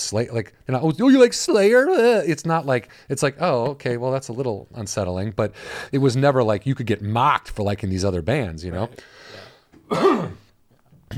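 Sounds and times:
speech: 0.1s - 10.4s
person coughing: 9.9s - 10.5s.

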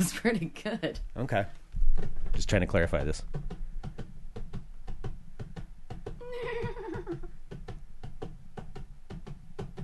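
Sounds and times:
speech: 0.0s - 3.5s
vocal horse whinny imitation: 6.2s - 7.2s.

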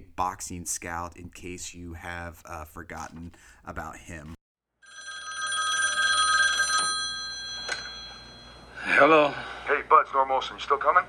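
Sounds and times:
speech: 0.2s - 4.4s, 9.0s - 11.0s
telephone ringing with a trilling bell tone: 4.8s - 9.3s.

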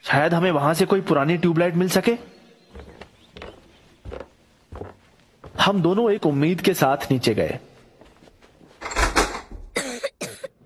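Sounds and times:
speech: 0.1s - 2.4s, 5.7s - 7.7s
person coughing from inhaled dust: 9.8s - 10.6s.

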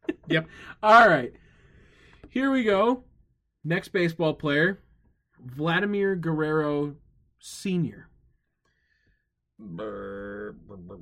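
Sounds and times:
speech: 0.3s - 1.4s, 2.3s - 4.8s, 5.4s - 8.1s, 9.6s - 11.0s
loud drawn-out resonant burp with throaty gurgles: 9.6s - 11.0s.

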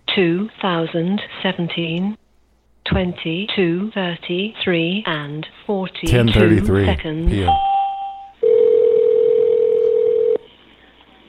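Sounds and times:
speech: 0.2s - 2.2s, 2.9s - 7.7s
electronic telephone tone: 7.5s - 10.4s.

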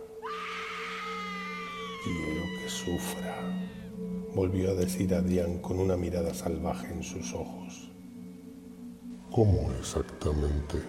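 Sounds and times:
woman screaming in terror on seeing a corpse: 0.1s - 4.0s
speech: 2.0s - 7.8s, 9.4s - 10.8s.

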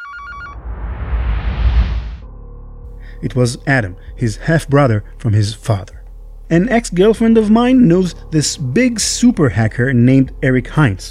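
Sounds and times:
electronic telephone ringing: 0.0s - 0.6s
low hum: 0.2s - 10.9s
rumbling whoosh: 0.5s - 4.2s
speech: 3.2s - 11.1s.

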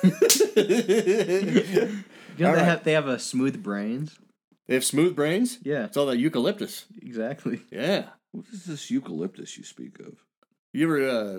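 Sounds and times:
laughter: 0.0s - 3.7s
speech: 0.0s - 11.3s
sharp loud open-hand slap: 0.1s - 0.6s.

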